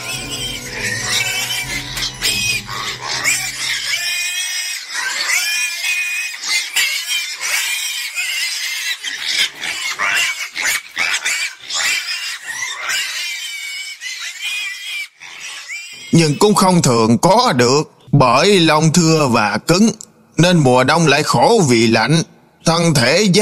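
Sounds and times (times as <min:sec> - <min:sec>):
pigs squealing shrilly: 0:00.0 - 0:17.1
speech: 0:16.2 - 0:23.4.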